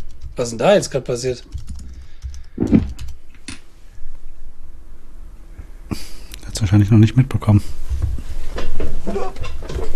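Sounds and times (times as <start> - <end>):
speech: 0.4 - 1.6, 6.8 - 7.8, 8.8 - 9.9
computer keyboard keys clacking while typing a chat message: 1.5 - 3.2.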